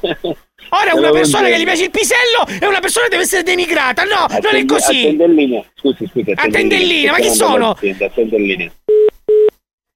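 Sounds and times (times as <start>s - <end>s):
speech: 0.0s - 9.0s
telephone call on hold beeps: 8.9s - 9.5s.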